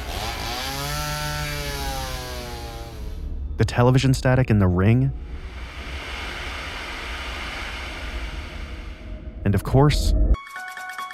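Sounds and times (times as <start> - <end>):
horror-film chainsaw running: 0.0 - 3.2, 5.5 - 9.0
speech: 3.6 - 5.5, 9.5 - 10.4.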